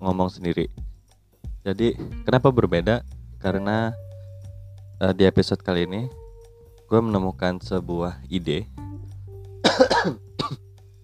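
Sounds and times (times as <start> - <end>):
speech: 0.0 - 0.9, 1.6 - 4.1, 5.0 - 6.2, 6.9 - 9.0, 9.8 - 10.6
dry cough: 9.6 - 10.6.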